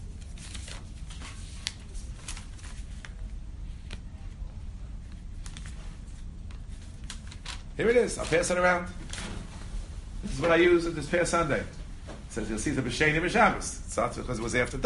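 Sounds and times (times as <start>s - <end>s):
papers rustling as someone leafs through sheets: 0.0s - 4.0s, 5.0s - 10.7s
speech: 7.8s - 9.0s, 10.3s - 11.8s, 12.4s - 14.8s.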